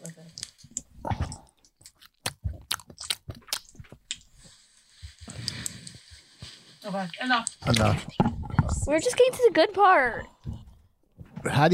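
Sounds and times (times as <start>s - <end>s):
crunchy chewing and biting from an ASMR eating video: 0.4s - 6.3s
speech: 6.9s - 10.3s, 11.4s - 11.7s.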